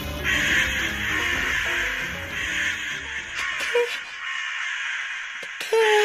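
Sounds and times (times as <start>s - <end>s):
crows cawing while fighting over carrion in the street: 0.2s - 5.8s.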